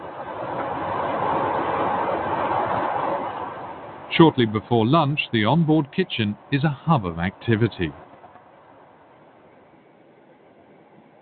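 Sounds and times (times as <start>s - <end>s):
train rumbling on rails: 0.0s - 7.9s
speech: 4.2s - 8.0s.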